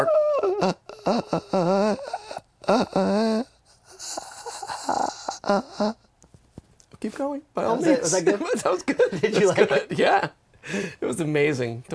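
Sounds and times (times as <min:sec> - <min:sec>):
speech: 0:00.0 - 0:04.2, 0:04.9 - 0:06.0, 0:07.0 - 0:11.9
voice imitating the wheezing breath of a collapsed lung: 0:00.0 - 0:06.1
laughter: 0:07.8 - 0:10.3.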